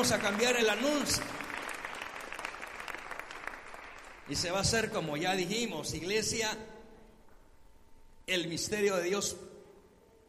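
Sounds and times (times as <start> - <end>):
speech: 0.0 - 1.5, 4.3 - 6.8, 8.3 - 9.5
congregation applauding in church: 0.0 - 5.2.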